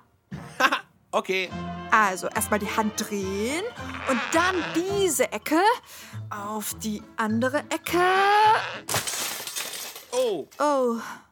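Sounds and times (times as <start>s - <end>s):
speech: 1.2s - 9.3s, 10.2s - 11.3s
pile of papers falling to the floor: 8.9s - 10.4s.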